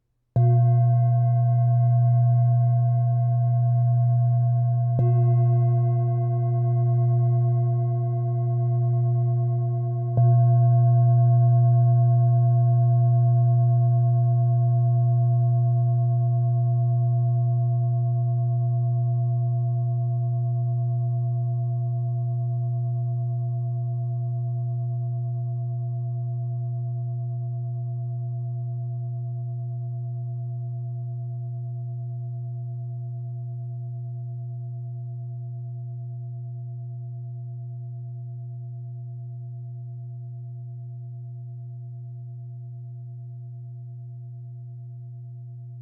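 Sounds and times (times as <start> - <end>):
black Tibetan singing bowl: 0.4 - 44.4.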